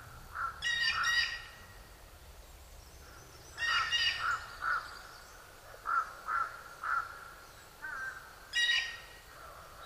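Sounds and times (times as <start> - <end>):
blue jay calling with harsh raspy jeers: 0.3 - 1.7, 3.0 - 9.2.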